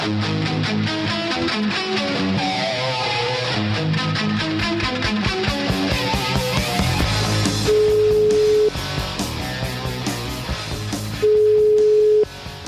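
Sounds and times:
music: 0:00.0 - 0:12.6
steady electronic telephone beeps while placing a call: 0:07.7 - 0:08.7, 0:11.2 - 0:12.3.

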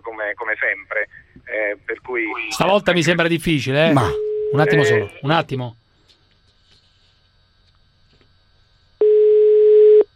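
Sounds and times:
speech: 0:00.2 - 0:05.8
telephone ringback tone: 0:04.0 - 0:05.0, 0:09.0 - 0:10.1.

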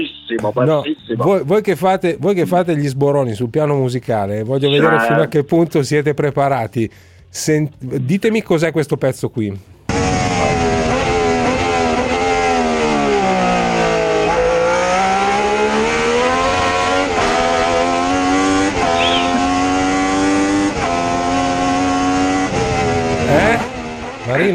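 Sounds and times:
speech: 0:00.0 - 0:09.7, 0:24.3 - 0:24.5
older car engine revving: 0:09.9 - 0:24.5.

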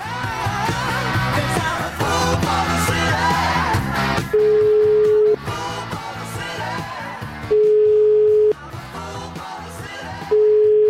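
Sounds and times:
loud busy music bed: 0:00.0 - 0:10.4
phone ringback tone while placing a call: 0:04.3 - 0:05.4, 0:07.5 - 0:08.6, 0:10.3 - 0:10.8.

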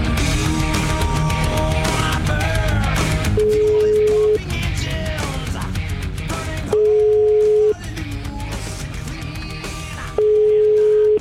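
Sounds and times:
music: 0:00.0 - 0:11.1
telephone ringback tone while a call is placed: 0:03.4 - 0:04.4, 0:06.8 - 0:07.8, 0:10.2 - 0:11.1.

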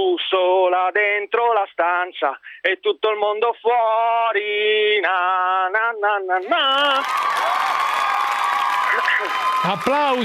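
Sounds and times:
speech: 0:00.1 - 0:07.6, 0:08.9 - 0:10.2
dense crowd applauding: 0:06.6 - 0:10.2.

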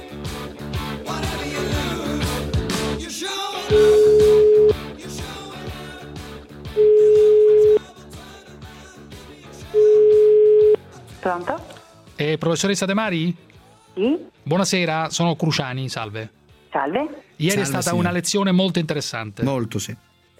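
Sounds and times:
loud music: 0:00.0 - 0:20.3
telephone line ringing beeps while placing a call: 0:03.7 - 0:04.8, 0:06.8 - 0:07.8, 0:09.8 - 0:10.8
speech: 0:11.4 - 0:20.1.

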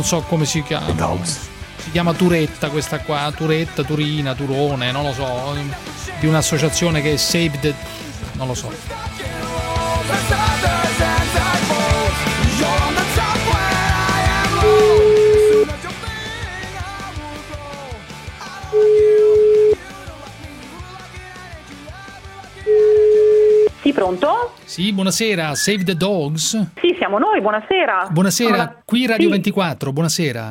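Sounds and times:
speech: 0:00.0 - 0:09.3, 0:24.0 - 0:30.4
music: 0:00.0 - 0:29.6
telephone ringback tone: 0:14.6 - 0:15.7, 0:18.8 - 0:19.8, 0:22.7 - 0:23.8.

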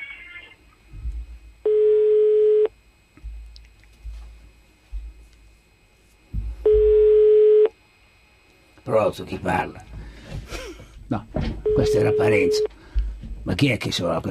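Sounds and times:
telephone line tone during a call: 0:01.6 - 0:02.7, 0:06.6 - 0:07.8, 0:11.6 - 0:12.7
speech: 0:08.9 - 0:09.9, 0:11.1 - 0:12.8, 0:13.5 - 0:14.2.

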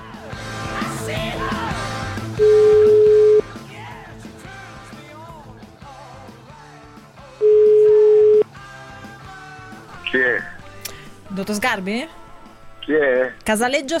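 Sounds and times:
busy music: 0:00.0 - 0:13.9
telephone line ringing tones: 0:02.4 - 0:03.5, 0:07.4 - 0:08.4
speech: 0:11.6 - 0:12.2, 0:12.9 - 0:13.9.

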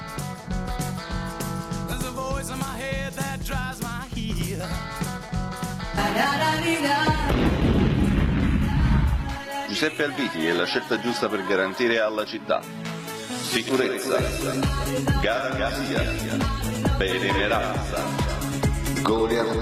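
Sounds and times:
rhythmic music: 0:00.0 - 0:07.4, 0:08.6 - 0:19.6
loud rumbling explosion of the Vesuvius volcano erupting: 0:07.3 - 0:09.4
speech: 0:09.8 - 0:12.8, 0:13.5 - 0:18.3, 0:19.0 - 0:19.6.

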